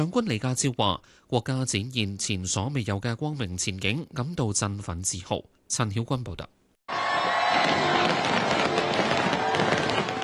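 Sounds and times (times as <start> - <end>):
speech: 0.0 - 6.6
fireworks crackling and popping: 7.5 - 10.2.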